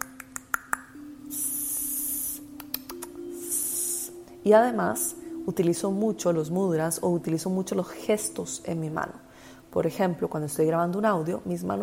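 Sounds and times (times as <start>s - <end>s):
tongue clicks in channeled light language vocalization: 0.0s - 4.0s
vocal hissing bursts in channeled light language: 1.3s - 2.8s, 3.4s - 4.3s
speech: 4.4s - 11.8s.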